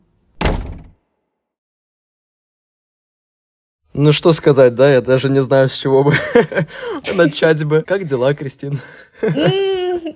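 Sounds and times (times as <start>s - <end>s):
wardrobe door pushed shut: 0.4s - 1.0s
speech: 4.0s - 10.1s
laughter: 6.1s - 7.6s, 8.7s - 10.1s.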